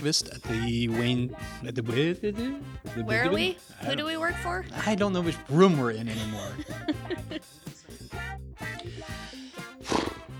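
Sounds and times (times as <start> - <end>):
speech: 0.0 - 7.7
laughter: 5.9 - 8.0
horse snorting: 9.8 - 10.3.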